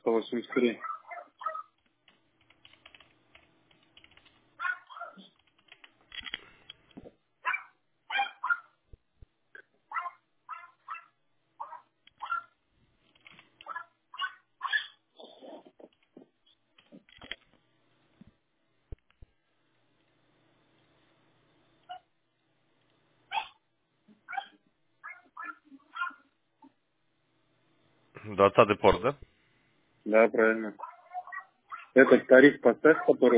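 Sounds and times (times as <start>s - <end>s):
speech: 0.2s - 1.0s, 28.4s - 29.3s, 30.1s - 30.9s, 32.0s - 33.3s
dog barking in short high yaps: 0.5s - 1.8s, 4.6s - 5.3s, 7.4s - 8.8s, 9.9s - 12.6s, 13.7s - 15.0s, 23.3s - 23.6s, 24.3s - 26.3s, 30.8s - 33.3s.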